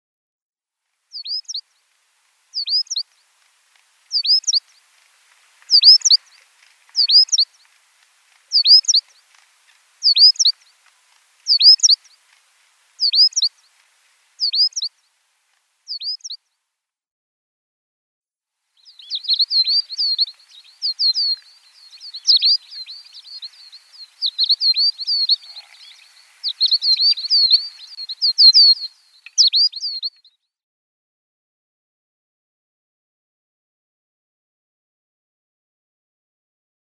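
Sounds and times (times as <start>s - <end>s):
Black-crowned Sparrow-Lark song: 1.1s - 1.7s, 2.5s - 3.3s, 4.0s - 4.9s, 5.6s - 7.8s, 8.4s - 12.4s, 13.0s - 13.8s, 14.4s - 15.0s, 15.9s - 16.4s, 18.8s - 30.4s.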